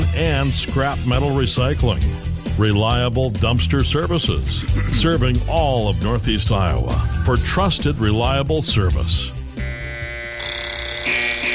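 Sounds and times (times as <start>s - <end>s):
speech: 0.2s - 9.4s
morning alarm with a steady electronic ringing tone: 9.6s - 11.5s.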